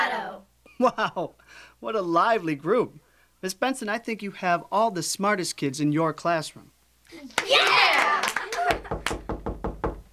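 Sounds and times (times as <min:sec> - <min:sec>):
speech: 0:00.2 - 0:07.9
firm knocks on a door: 0:08.8 - 0:10.1.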